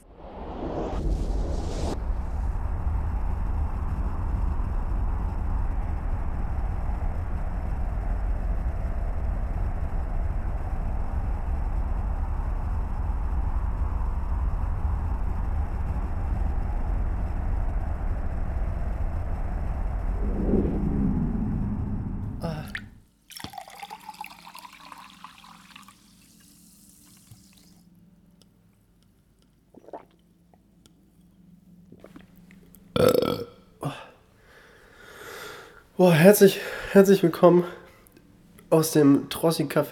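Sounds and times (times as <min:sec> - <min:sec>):
rising whoosh of a sci-fi warp drive effect: 0:00.0 - 0:03.3, 0:19.9 - 0:23.0
deep steady sci-fi warp drive engine rumble: 0:00.6 - 0:23.0
speech: 0:36.0 - 0:37.8, 0:38.7 - 0:39.8.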